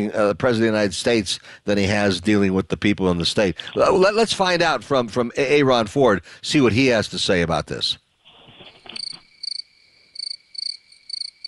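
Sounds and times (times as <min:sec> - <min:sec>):
speech: 0:00.0 - 0:08.0
crickets chirping: 0:08.6 - 0:11.4.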